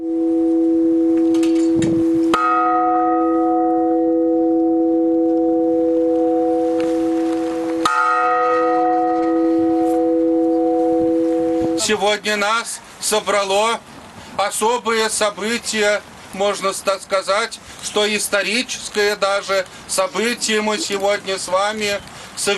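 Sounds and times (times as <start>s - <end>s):
new church bells ringing with resonant strikes: 0.0s - 12.2s
speech: 11.9s - 22.5s.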